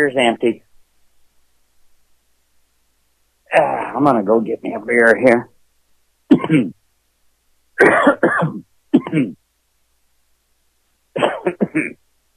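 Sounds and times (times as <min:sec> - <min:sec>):
speech: 0:00.0 - 0:00.7, 0:03.5 - 0:05.5, 0:06.3 - 0:06.8, 0:07.8 - 0:09.4, 0:11.4 - 0:12.0
person clearing the throat: 0:06.3 - 0:06.8, 0:07.8 - 0:09.4, 0:11.2 - 0:12.0
person coughing: 0:06.3 - 0:06.8, 0:07.8 - 0:09.4, 0:11.2 - 0:12.0.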